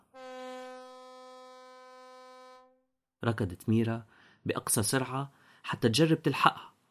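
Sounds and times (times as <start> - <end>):
distant ferry horn blast leaving the harbor: 0.0 - 2.9
speech: 3.2 - 6.7.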